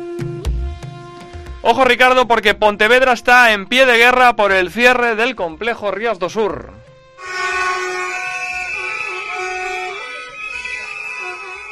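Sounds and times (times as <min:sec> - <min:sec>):
speech: 0:01.6 - 0:07.4
car horns honking in protest against closure of a sports complex: 0:07.2 - 0:11.7.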